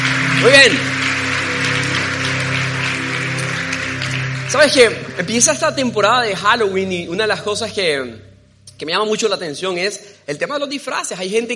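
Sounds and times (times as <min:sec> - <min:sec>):
audience applause: 0:00.0 - 0:05.9
low sustained musical hum: 0:00.0 - 0:09.9
speech: 0:00.4 - 0:01.0, 0:04.5 - 0:11.5.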